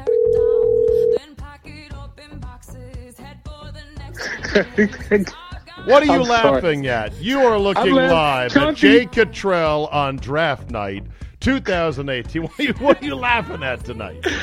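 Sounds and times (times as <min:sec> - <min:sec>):
telephone dial tone: 0:00.1 - 0:01.2
laughter: 0:04.1 - 0:05.4, 0:05.9 - 0:09.2, 0:12.4 - 0:14.3
speech: 0:04.5 - 0:14.3.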